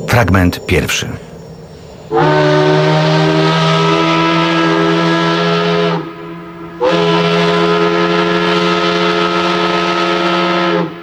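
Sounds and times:
speech: 0.2s - 1.3s
factory whistle sounding in the early morning in Łódź: 2.2s - 10.9s.

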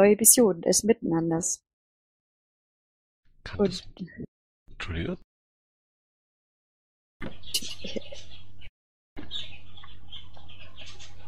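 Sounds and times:
speech: 0.0s - 1.7s, 3.4s - 5.3s
birds chirping and twittering: 7.2s - 11.2s.

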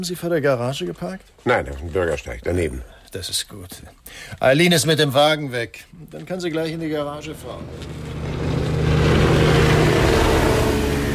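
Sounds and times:
speech: 0.0s - 8.2s
racing motorboats passing: 7.3s - 11.1s.

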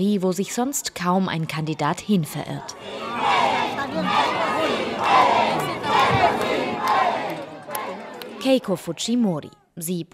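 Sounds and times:
speech: 0.0s - 6.4s, 8.4s - 10.1s
crowd cheering and shouting at a presidential campaign rally in Peru: 2.7s - 8.9s.

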